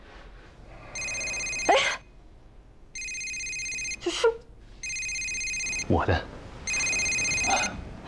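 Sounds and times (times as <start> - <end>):
telephone ringing with an electronic trilling tone: 0.9 - 2.0, 2.9 - 4.1, 4.8 - 5.9, 6.6 - 7.8.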